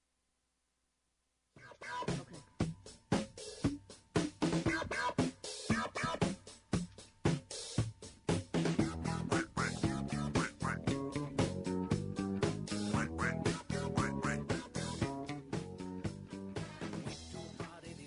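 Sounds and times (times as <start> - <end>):
bouncy novelty disco song with four-on-the-floor beat: 1.7 - 18.0
nasal quacking duck-like voice singing: 4.7 - 6.4, 8.8 - 11.6, 12.6 - 15.5.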